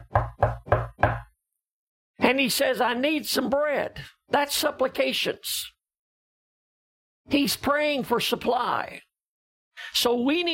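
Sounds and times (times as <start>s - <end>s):
knocking on a wooden door: 0.0s - 1.3s
speech: 2.3s - 5.7s, 7.3s - 9.1s, 9.8s - 10.5s.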